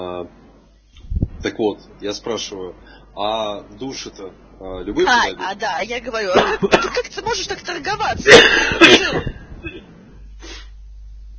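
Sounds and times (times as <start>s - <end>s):
speech: 1.4s - 9.3s
person coughing: 6.4s - 7.0s, 8.3s - 9.9s.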